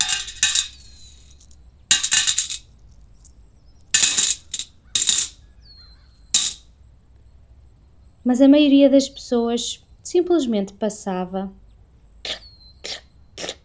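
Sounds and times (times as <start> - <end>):
coins dropping into a small bowl: 0.0 - 5.4, 6.4 - 6.6
speech: 8.2 - 11.6.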